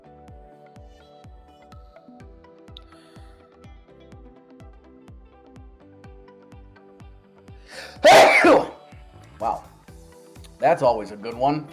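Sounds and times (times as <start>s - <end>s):
speech: 7.7s - 8.7s, 10.6s - 11.7s
person sneezing from cold weather in Michigan: 7.7s - 8.8s.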